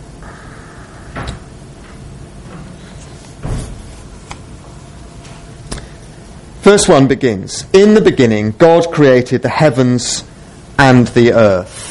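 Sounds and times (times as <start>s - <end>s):
hum: 0.0s - 11.8s
back door thud: 3.4s - 3.9s
speech: 6.6s - 11.8s.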